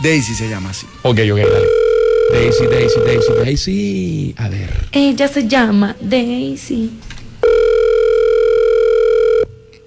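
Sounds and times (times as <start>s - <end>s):
speech: 0.0s - 7.6s
telephone ring tone on an outgoing call: 1.4s - 3.5s, 7.4s - 9.8s.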